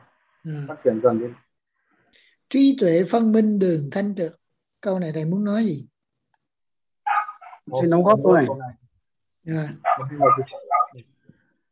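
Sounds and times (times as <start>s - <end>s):
speech: 0.4s - 1.5s, 2.5s - 5.9s, 7.7s - 8.8s, 9.4s - 11.1s
dog barking and whining: 7.1s - 7.7s, 9.8s - 11.0s.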